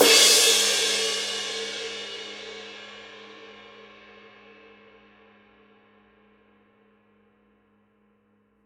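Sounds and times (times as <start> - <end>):
Paiste Twenty Master medium ride cymbal: 0.0 - 1.8.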